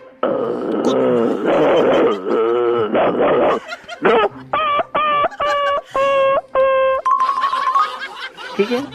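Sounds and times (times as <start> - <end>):
person imitating dog barking: 0.2 - 3.6
speech: 0.2 - 4.2, 8.6 - 8.9
laughter: 1.5 - 8.9.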